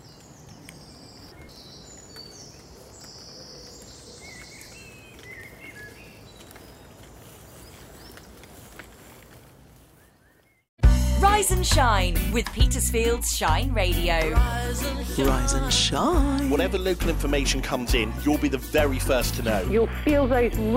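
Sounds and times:
early morning birdsong, several birds chirping and whistling: 0:00.0 - 0:08.4
speech: 0:11.4 - 0:20.7.

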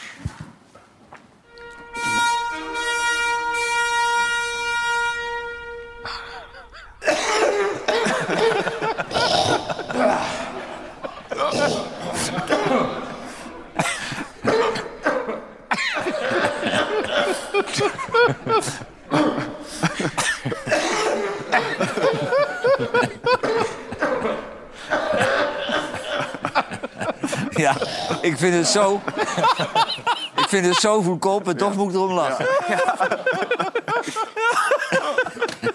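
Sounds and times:
sustained buzzing tone: 0:01.5 - 0:07.0
laughter: 0:03.3 - 0:35.7
person coughing harshly: 0:06.0 - 0:30.6
speech: 0:28.4 - 0:34.7.

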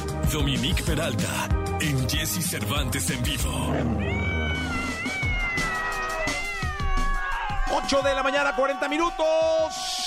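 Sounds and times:
speech: 0:00.3 - 0:04.8, 0:07.7 - 0:10.0
cat meowing: 0:03.8 - 0:07.2.

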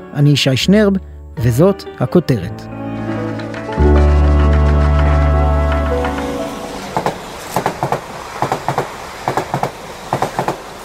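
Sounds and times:
speech: 0:00.1 - 0:02.8
train passing on railway tracks with wheels clacking over rail joints: 0:03.0 - 0:10.8.

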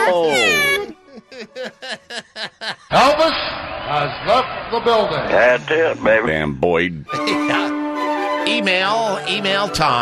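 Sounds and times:
speech: 0:00.0 - 0:00.6, 0:01.4 - 0:07.6, 0:08.5 - 0:09.9
laughter: 0:00.0 - 0:03.2, 0:07.1 - 0:08.4
cat meowing: 0:00.1 - 0:00.9.

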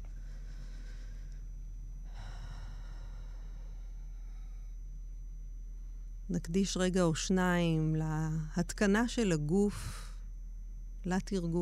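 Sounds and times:
slow deep breaths: 0:00.0 - 0:04.9
low steady hum: 0:00.0 - 0:11.5
speech: 0:06.3 - 0:10.0, 0:11.0 - 0:11.5.

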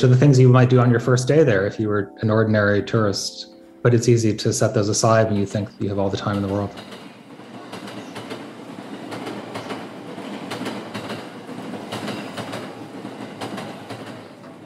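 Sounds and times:
speech: 0:00.0 - 0:07.0
train running on rails: 0:04.4 - 0:14.6.

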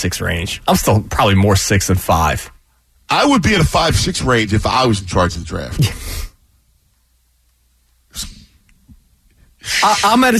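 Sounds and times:
speech: 0:00.0 - 0:06.2, 0:09.6 - 0:10.3
person sneezing: 0:08.1 - 0:08.6, 0:09.6 - 0:10.2.

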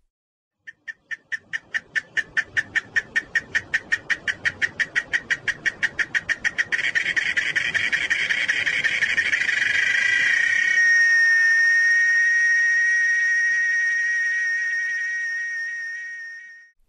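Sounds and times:
cicada singing: 0:00.7 - 0:16.7.

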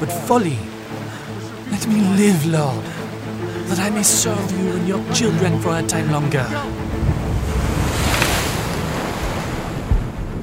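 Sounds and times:
speech: 0:00.0 - 0:00.7, 0:01.8 - 0:03.0, 0:03.7 - 0:07.2
wind: 0:00.0 - 0:10.4
big wave crashing over a small boat: 0:06.7 - 0:10.4
sharp water splash: 0:06.8 - 0:10.4.

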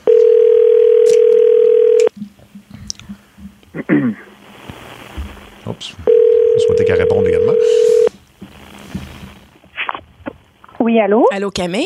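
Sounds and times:
telephone ringback tone of an outgoing call: 0:00.0 - 0:02.1, 0:06.1 - 0:08.1
speech: 0:07.0 - 0:07.8, 0:11.0 - 0:11.8.

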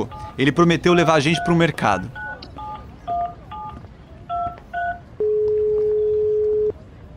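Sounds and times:
speech: 0:00.0 - 0:02.2
long steady clear tone: 0:01.0 - 0:07.1
telephone keypad dialing tones: 0:01.3 - 0:01.6, 0:02.2 - 0:06.7.

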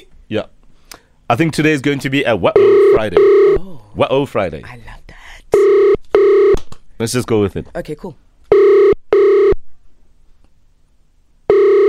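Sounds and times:
speech: 0:00.3 - 0:00.6, 0:01.3 - 0:05.8, 0:07.0 - 0:08.2
phone ringtone ringing as a call is placed: 0:02.6 - 0:03.6, 0:05.6 - 0:06.6, 0:08.5 - 0:09.6, 0:11.5 - 0:11.8.

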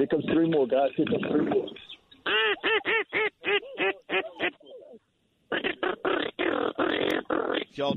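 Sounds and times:
speech: 0:00.0 - 0:01.9, 0:07.8 - 0:07.9
teal and diving ducks quacking: 0:00.0 - 0:07.9
hunter's duck call blown from a hunting blind: 0:02.2 - 0:04.6, 0:05.5 - 0:07.8.

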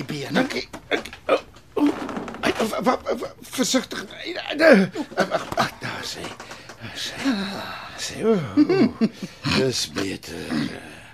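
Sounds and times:
speech: 0:00.1 - 0:01.1, 0:02.8 - 0:06.4, 0:07.0 - 0:10.8
wooden chair being pushed back, creaking: 0:00.3 - 0:03.3, 0:05.1 - 0:07.3.

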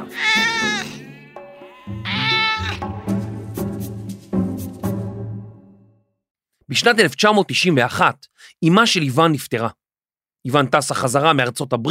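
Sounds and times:
cat meowing: 0:00.0 - 0:02.9
speech: 0:06.7 - 0:09.8, 0:10.4 - 0:11.8.

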